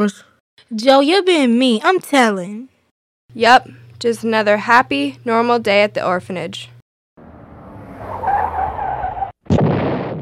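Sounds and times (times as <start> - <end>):
speech: 0.0 - 2.7, 3.3 - 6.7
car tires skidding as it pulls up in front of an orphanage: 7.4 - 9.4.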